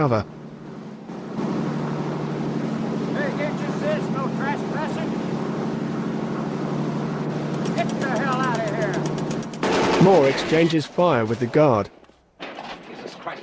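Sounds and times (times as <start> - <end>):
speech: 0.0 - 0.4, 7.8 - 9.1, 10.0 - 12.0
boat engine drone approaching Alcatraz: 0.0 - 9.9.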